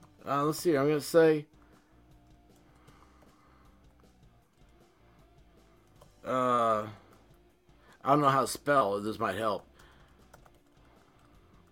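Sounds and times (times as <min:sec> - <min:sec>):
speech: 0:00.2 - 0:01.6, 0:06.3 - 0:07.0, 0:08.0 - 0:09.7
typing on a computer keyboard: 0:09.8 - 0:11.6.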